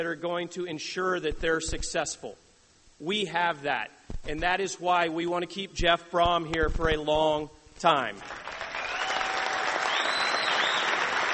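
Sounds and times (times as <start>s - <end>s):
speech: 0.0s - 8.6s
indoor audience applause: 8.2s - 11.3s
faint whistles from an audience: 8.8s - 11.0s.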